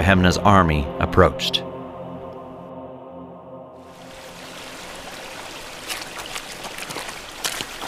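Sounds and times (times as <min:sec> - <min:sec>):
speech: 0:00.0 - 0:01.7
low hum: 0:00.0 - 0:06.0
rushing river water: 0:03.8 - 0:07.8
footsteps sloshing while wading through river water: 0:04.4 - 0:07.8.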